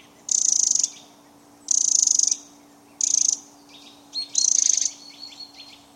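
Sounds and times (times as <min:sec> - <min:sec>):
faint Eurasian wren ticks: 0:00.0 - 0:05.7
steady low hum: 0:00.0 - 0:05.9.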